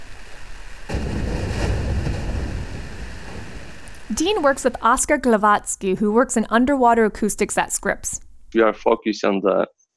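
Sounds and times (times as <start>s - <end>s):
deep rumble of a glacier calving and a block of ice falling: 0.0s - 5.1s
speech: 4.1s - 9.8s.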